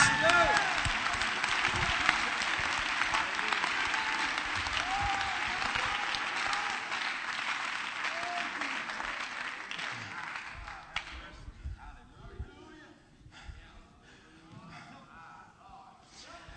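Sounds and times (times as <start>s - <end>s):
scattered voices and cheers: 0.0s - 11.0s
audience clapping: 0.0s - 11.3s.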